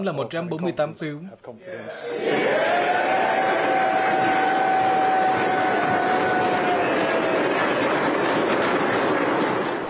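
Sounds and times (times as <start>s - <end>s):
speech: 0.0s - 3.8s
held shout from the crowd: 2.0s - 7.9s
room applauding after vote result announcement: 2.0s - 9.8s.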